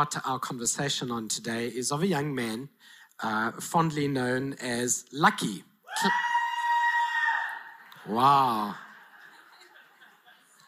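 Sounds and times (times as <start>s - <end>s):
speech: 0.0s - 6.3s, 8.1s - 8.8s
loud sustained shout: 5.9s - 8.7s
laughter: 7.6s - 10.6s.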